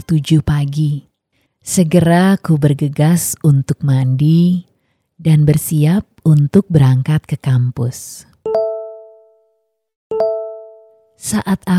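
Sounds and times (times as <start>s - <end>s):
speech: 0.0s - 8.6s, 11.2s - 11.7s
phone notification chime: 8.5s - 9.5s, 10.1s - 11.2s.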